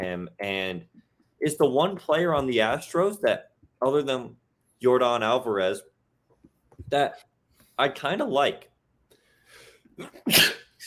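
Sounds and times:
speech: 0.0s - 5.9s, 6.9s - 8.7s, 10.0s - 10.8s
sneeze: 10.0s - 10.8s.

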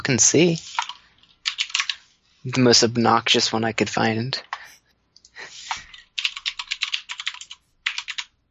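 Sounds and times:
speech: 0.1s - 0.8s, 2.4s - 4.5s
typing on a mechanical keyboard with Cherry blue switches: 0.6s - 2.0s, 5.7s - 8.4s.

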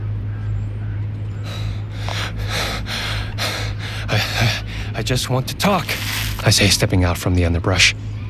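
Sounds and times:
low steady hum: 0.0s - 8.2s
heavy panting after running: 1.4s - 6.4s
speech: 4.2s - 8.2s.

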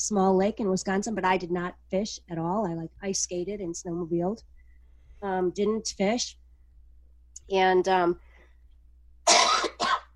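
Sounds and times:
speech: 0.0s - 4.6s, 5.2s - 6.4s, 7.5s - 8.3s
person coughing: 9.3s - 10.1s.

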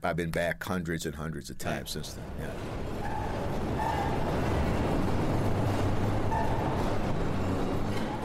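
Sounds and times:
speech: 0.0s - 2.8s
train pulling into an elevated station: 1.7s - 8.2s
high whining tones from train brakes or motors: 2.0s - 8.2s.

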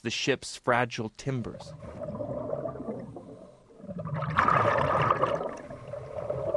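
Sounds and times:
speech: 0.0s - 2.2s
diver slipping beneath ice-cold silty lake water, bubbling and sloshing: 1.6s - 6.5s
steady underwater rumble: 1.7s - 6.5s.

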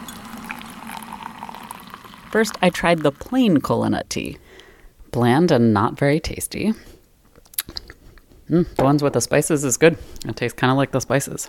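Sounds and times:
water bubbling and gurgling while heated and poured for kola nut tea: 0.0s - 3.3s
speech: 2.3s - 4.4s, 5.1s - 7.0s, 8.5s - 11.4s.

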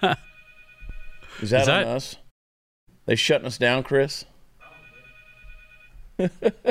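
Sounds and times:
laughter: 0.0s - 0.2s, 6.2s - 6.6s
speech: 0.0s - 0.3s, 1.4s - 2.2s, 3.1s - 4.3s, 6.2s - 6.6s
phone ringing: 0.0s - 1.8s, 4.6s - 6.0s.

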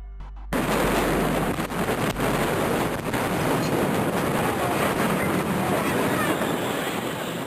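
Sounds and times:
loud continuous roaring rumble: 0.4s - 7.4s
huge explosion: 0.5s - 7.4s
wind noise on the microphone: 0.5s - 7.4s.

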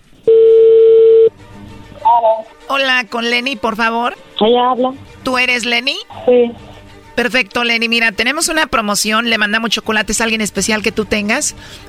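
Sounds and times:
telephone line tone while dialing a call: 0.2s - 1.4s
speech: 2.2s - 11.8s.

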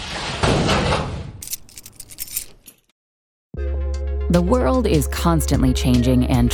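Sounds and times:
door swinging shut with a whoosh and thud: 0.0s - 1.4s
metallic rattles and clicks of a door lock being turned: 1.4s - 2.9s
speech: 4.3s - 6.5s.

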